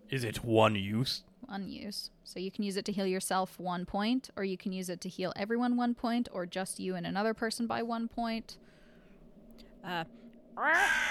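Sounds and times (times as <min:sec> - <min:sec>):
speech: 0:00.1 - 0:08.7, 0:09.8 - 0:11.0
low hum: 0:01.3 - 0:11.0
person imitating a raven's caw: 0:10.6 - 0:11.0.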